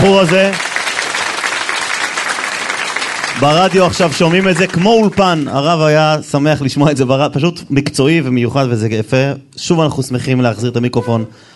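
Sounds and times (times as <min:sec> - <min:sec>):
speech: 0:00.0 - 0:00.7, 0:03.4 - 0:11.5
audience applause: 0:00.0 - 0:05.6.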